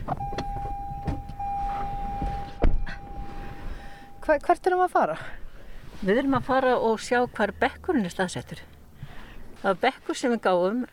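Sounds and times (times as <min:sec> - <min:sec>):
low car engine rumble: 0:00.0 - 0:09.9
steady electronic chime tone inside a car: 0:00.2 - 0:04.6
speech: 0:04.3 - 0:05.4, 0:06.0 - 0:08.7, 0:09.6 - 0:10.9.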